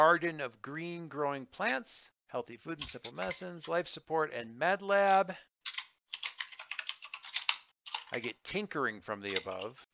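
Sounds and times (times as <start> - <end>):
speech: 0.0 - 5.8, 8.1 - 9.9
typing on a computer keyboard: 5.7 - 8.2.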